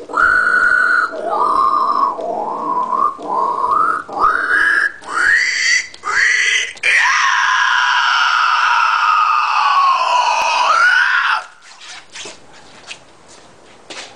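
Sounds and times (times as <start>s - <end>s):
voice imitating pig with squealing oinks: 0.0s - 12.1s
faint shuffling: 11.6s - 14.1s.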